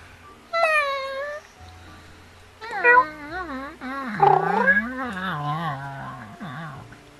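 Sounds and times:
cat yowling with wavering pitch: 0.6s - 1.4s, 2.6s - 6.8s.

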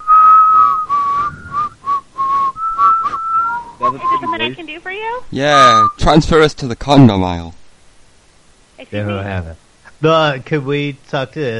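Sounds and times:
person whistling loudly: 0.0s - 4.5s
speech: 3.9s - 7.6s, 8.8s - 11.5s.

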